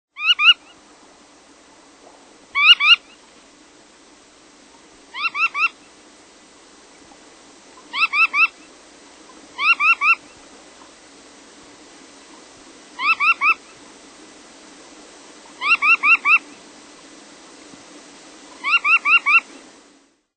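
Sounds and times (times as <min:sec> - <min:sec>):
Surfbird calling: 0:00.1 - 0:00.9, 0:02.0 - 0:03.4, 0:04.7 - 0:06.0, 0:07.7 - 0:10.9, 0:12.3 - 0:13.9, 0:15.4 - 0:17.1, 0:18.5 - 0:19.6.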